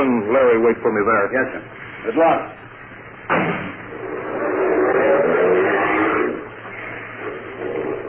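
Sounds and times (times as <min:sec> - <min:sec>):
speech: 0:00.3 - 0:02.6
car engine revving as the car pulls away: 0:03.4 - 0:06.6.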